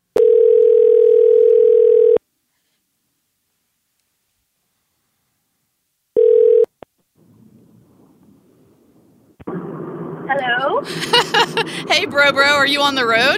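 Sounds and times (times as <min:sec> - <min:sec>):
telephone dial tone while placing a call: 0:00.1 - 0:02.2, 0:06.2 - 0:06.7
faint rumbling noise: 0:02.2 - 0:13.3
laughter: 0:10.8 - 0:12.1
speech: 0:12.0 - 0:13.3.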